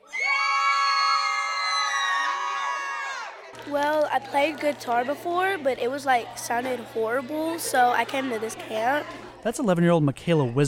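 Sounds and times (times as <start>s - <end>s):
group of girls screaming at full volume: 0.0s - 3.4s
speech: 3.7s - 10.6s.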